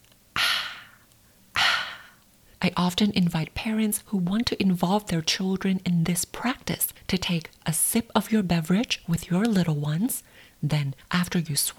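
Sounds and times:
breathy audible exhales as a somatic warm-up exercise: 0:00.4 - 0:01.0, 0:01.6 - 0:02.2
speech: 0:02.6 - 0:11.7.

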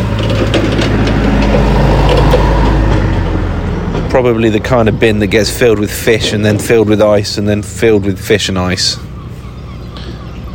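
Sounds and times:
light rattles and knocks: 0:00.0 - 0:08.3
forklift truck engine droning at a working fishing port: 0:00.0 - 0:10.5
speech: 0:04.2 - 0:09.1.

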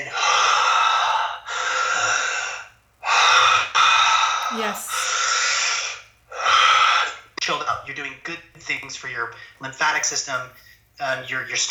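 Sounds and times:
deep diaphragmatic breathing into the belly: 0:00.0 - 0:07.3
speech: 0:04.6 - 0:04.9, 0:08.9 - 0:11.6.

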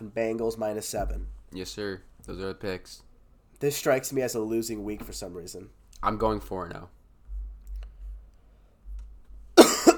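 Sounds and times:
faint low hum: 0:00.0 - 0:09.9
speech: 0:00.2 - 0:07.0
person sick with a virus coughing: 0:09.6 - 0:09.9.

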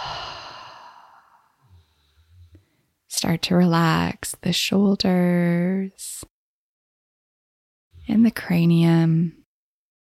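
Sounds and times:
slow breathy exhale during a guided breathing meditation: 0:00.0 - 0:02.9
speech: 0:03.3 - 0:06.3, 0:08.1 - 0:09.4.

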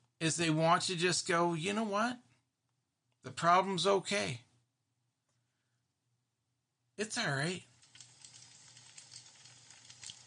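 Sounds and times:
speech: 0:00.2 - 0:02.3, 0:03.2 - 0:04.4, 0:07.0 - 0:07.7
wood fire crackling: 0:07.7 - 0:10.2.

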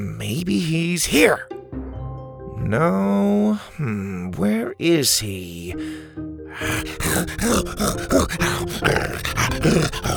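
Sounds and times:
speech: 0:00.0 - 0:01.5, 0:02.6 - 0:10.1
excited creature growling and grunting: 0:06.6 - 0:10.1.

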